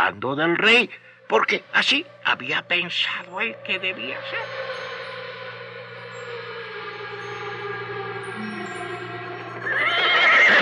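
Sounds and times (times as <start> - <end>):
speech: 0.1 - 4.8
horse neighing after being hit during a fight: 9.7 - 10.6.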